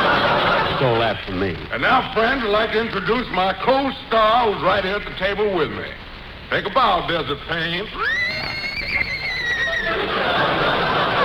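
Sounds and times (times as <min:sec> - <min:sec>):
audience laughing: 0:00.0 - 0:01.3, 0:08.0 - 0:11.2
speech: 0:00.8 - 0:09.1
horse whinnying: 0:08.0 - 0:10.1.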